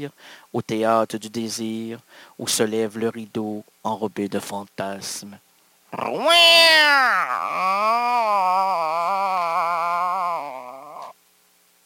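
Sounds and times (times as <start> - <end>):
speech: 0.0 - 9.8
person imitating a cat meowing: 5.9 - 11.2.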